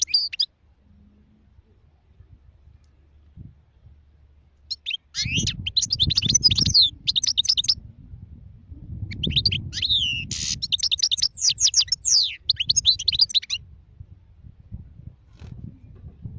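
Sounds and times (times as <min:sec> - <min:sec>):
wild European goldfinch twittering song with slurred whistles: 0:00.0 - 0:01.1, 0:04.6 - 0:07.8, 0:09.0 - 0:13.6
low rumbling background: 0:00.5 - 0:10.6, 0:13.6 - 0:16.3.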